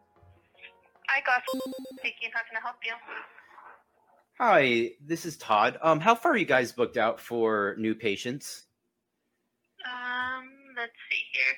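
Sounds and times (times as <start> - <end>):
speech: 1.1 - 3.4, 4.4 - 8.7, 10.8 - 11.5
phone call ringtone playing through the line: 1.5 - 2.3.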